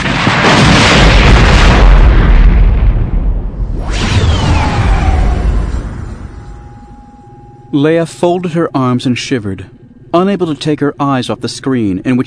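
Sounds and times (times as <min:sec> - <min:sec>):
gutted gunship exploding with deep rumble: 0:00.0 - 0:07.0
second explosion burst with a sweeping whoosh: 0:03.6 - 0:07.8
speech: 0:07.7 - 0:12.2.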